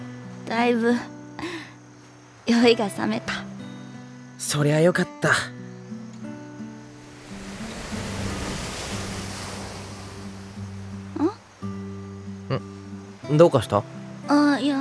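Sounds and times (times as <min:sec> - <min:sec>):
speech: 0:00.5 - 0:01.5, 0:02.5 - 0:03.4, 0:04.5 - 0:05.6, 0:13.3 - 0:14.7
ocean waves washing on shore: 0:06.6 - 0:12.0.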